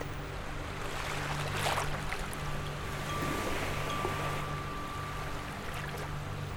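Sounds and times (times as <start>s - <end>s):
faint low drone: 0.0s - 6.5s
wind: 0.0s - 6.5s
ocean surf rushing: 2.8s - 6.5s.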